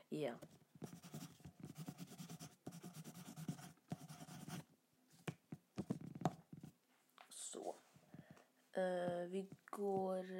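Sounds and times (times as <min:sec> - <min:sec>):
speech: 0:00.1 - 0:01.2, 0:08.8 - 0:10.3
pen scratching on paper as someone writes by hand in a secondhand shop: 0:00.4 - 0:04.7.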